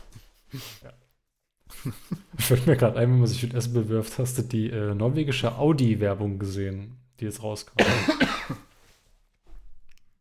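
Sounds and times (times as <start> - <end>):
speech: 0.5 - 1.0, 1.8 - 8.6
laughter: 1.7 - 2.7
person clearing throat: 7.8 - 8.7
person coughing into the crook of the arm: 7.8 - 8.7.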